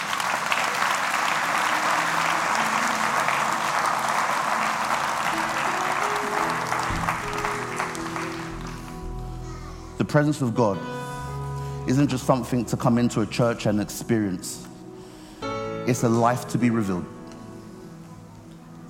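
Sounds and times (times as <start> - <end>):
audience clapping: 0.0 - 9.0
speech: 10.1 - 11.0, 11.9 - 14.7, 15.9 - 17.2.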